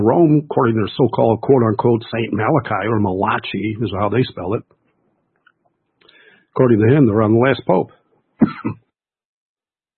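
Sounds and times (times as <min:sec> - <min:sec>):
speech: 0:00.0 - 0:04.8, 0:06.6 - 0:08.8
rough coughs from a throat tickle with a throat-clearing edge: 0:08.4 - 0:08.8.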